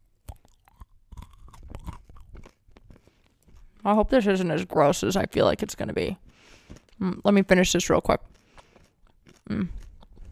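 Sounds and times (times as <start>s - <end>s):
crunching bite into a candy bar: 0.0s - 10.3s
speech: 3.8s - 8.4s.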